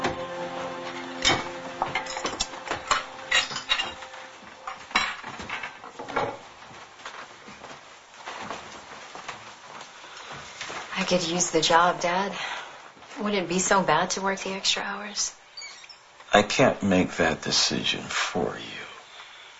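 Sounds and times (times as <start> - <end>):
dishes and cutlery clattering during washing up: 1.2 - 6.4
speech: 11.1 - 12.6, 13.2 - 15.4, 16.4 - 18.8.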